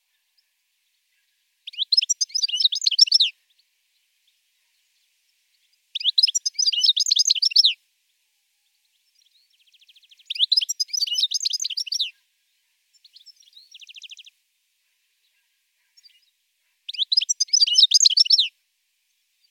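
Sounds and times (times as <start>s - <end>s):
European goldfinch twittering song: 1.6s - 3.6s, 5.6s - 7.8s, 9.1s - 12.1s, 12.9s - 14.3s, 15.9s - 18.5s.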